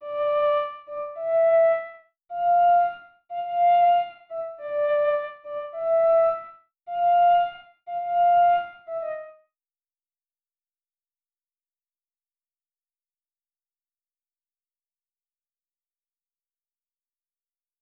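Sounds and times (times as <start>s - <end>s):
old radio flute melody in F major: 0.0s - 9.4s.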